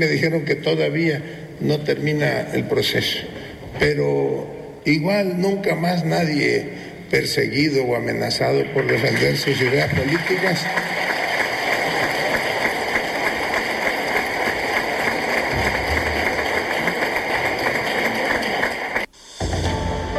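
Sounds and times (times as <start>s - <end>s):
speech: 0.0s - 11.2s
large audience applauding: 8.5s - 19.1s.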